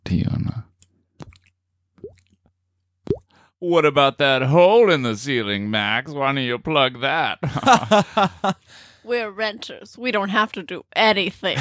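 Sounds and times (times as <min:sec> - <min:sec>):
speech: 0:00.1 - 0:00.4, 0:03.6 - 0:11.5
water drips plopping: 0:01.2 - 0:02.4, 0:03.1 - 0:03.3
laughter: 0:07.4 - 0:08.6.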